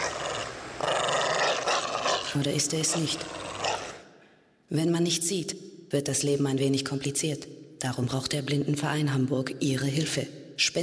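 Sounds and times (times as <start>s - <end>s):
dog growling low and menacingly: 0.0s - 4.0s
speech: 2.3s - 3.4s, 4.7s - 10.8s.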